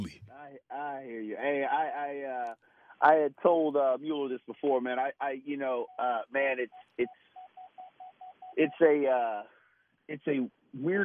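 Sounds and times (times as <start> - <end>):
speech: 0.1 - 7.3, 8.6 - 11.0
short evenly spaced electronic beeps: 6.7 - 8.7.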